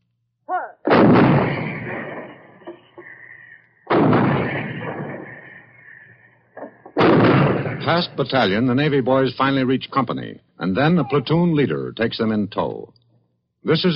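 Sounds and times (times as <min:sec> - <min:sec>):
155 mm artillery guns shelling enemy positions: 0:00.9 - 0:02.9, 0:03.9 - 0:05.9, 0:06.6 - 0:08.2
speech: 0:07.9 - 0:13.0, 0:13.6 - 0:13.9.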